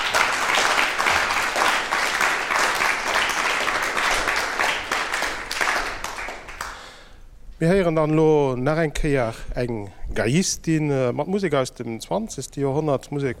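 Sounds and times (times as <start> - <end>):
audience applause for music students at a live concert in a music conservatory: 0.0 - 6.8
speech: 7.6 - 13.3.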